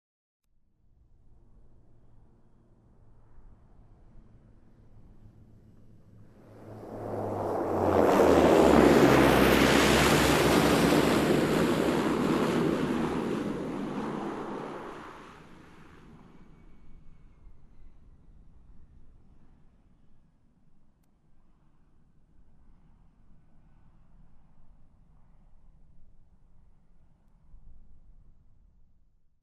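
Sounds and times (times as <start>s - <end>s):
light aircraft rolling past on the ground: 1.2s - 19.7s.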